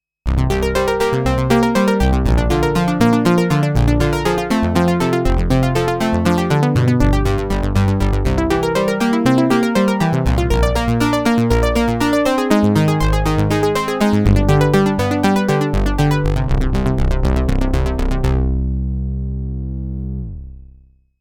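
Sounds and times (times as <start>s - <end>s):
Sequential Prophet '08 synthesizer doublearp factory program: 0.5s - 20.5s.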